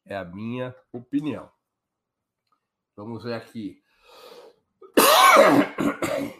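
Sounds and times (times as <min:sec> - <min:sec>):
speech: 0:00.1 - 0:01.6, 0:03.0 - 0:04.4, 0:05.3 - 0:06.3
person coughing: 0:04.8 - 0:06.3.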